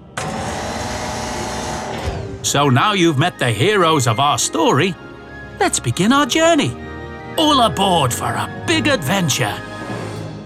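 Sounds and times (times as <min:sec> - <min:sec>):
gantry crane electric motor whine lifting and loading cargo: 0:00.0 - 0:02.4
speech: 0:02.4 - 0:05.0, 0:05.6 - 0:06.8, 0:07.4 - 0:09.7.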